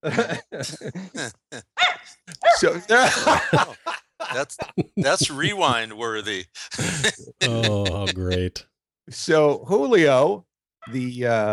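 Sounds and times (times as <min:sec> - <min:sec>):
speech: 0:00.0 - 0:01.4, 0:02.6 - 0:03.8, 0:04.4 - 0:11.5
laughter: 0:00.0 - 0:08.6
dogs barking: 0:01.8 - 0:02.7.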